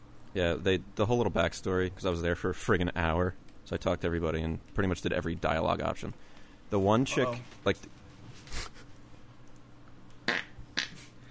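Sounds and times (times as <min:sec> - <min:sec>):
speech: 0:00.4 - 0:08.8
fart sounds: 0:10.2 - 0:11.2.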